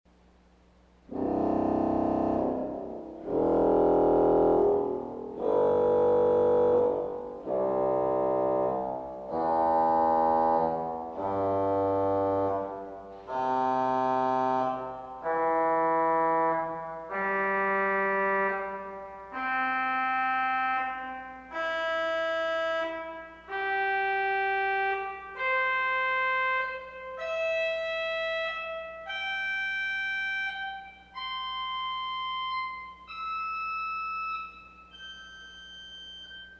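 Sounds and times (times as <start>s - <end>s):
organ arpeggio on a bombarde stop: 1.1s - 36.5s.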